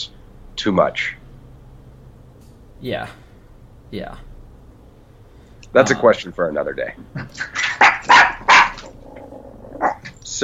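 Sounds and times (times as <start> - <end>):
speech: 0.0 - 1.2, 2.8 - 3.2, 3.9 - 4.3, 5.7 - 8.2
dogs barking: 7.1 - 10.1.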